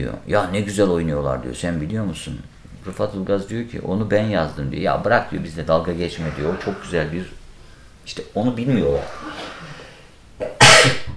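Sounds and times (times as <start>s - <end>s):
speech: 0.0s - 7.4s, 8.0s - 9.6s
quick intake of breath: 9.0s - 10.2s
person sneezing: 9.2s - 11.1s.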